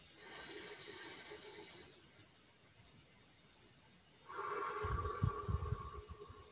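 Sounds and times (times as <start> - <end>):
group of people breathing in deeply: 0.0 - 2.1, 4.3 - 6.5.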